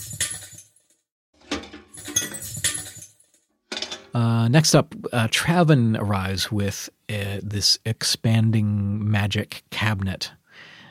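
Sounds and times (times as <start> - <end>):
small bits of glass being swept up: 1.9 - 3.3
speech: 4.2 - 10.4.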